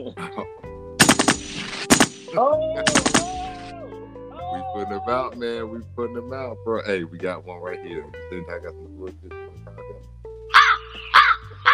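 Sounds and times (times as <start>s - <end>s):
laughter: 0.0s - 0.5s
loud sharp automatic gunshots: 1.0s - 3.7s
speech: 2.3s - 3.1s, 4.8s - 9.4s.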